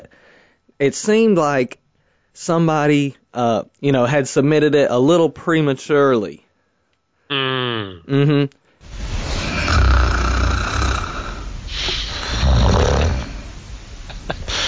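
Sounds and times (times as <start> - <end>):
faint hiss: 0.0 - 14.6
speech: 0.8 - 1.8, 2.4 - 6.4, 7.3 - 8.6
person imitating snoring: 7.3 - 8.5, 9.4 - 13.4.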